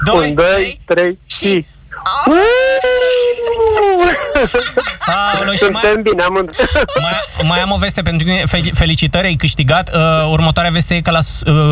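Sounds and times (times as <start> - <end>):
speech: 0.1 - 11.7
people imitating a wolf howl: 2.2 - 4.4
laughter: 2.3 - 7.8.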